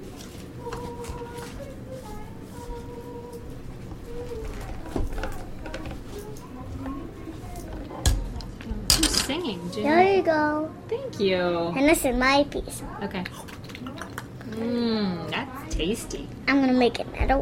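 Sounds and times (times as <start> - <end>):
toy dishes and utensils clinking and clattering: 4.4 - 9.4
speech: 9.8 - 13.5, 14.6 - 17.4.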